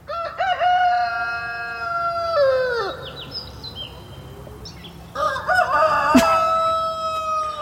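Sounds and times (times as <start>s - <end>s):
rooster crowing: 0.1s - 3.1s, 5.2s - 7.6s.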